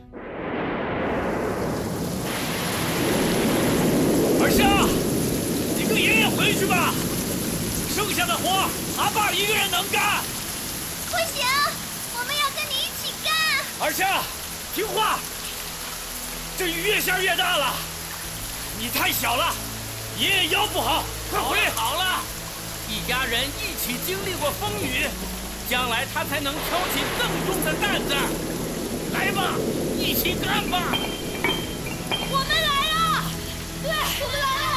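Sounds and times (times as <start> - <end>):
deep rumble: 0.0 - 9.0, 26.4 - 32.1
heavy rain pouring down: 0.0 - 34.7.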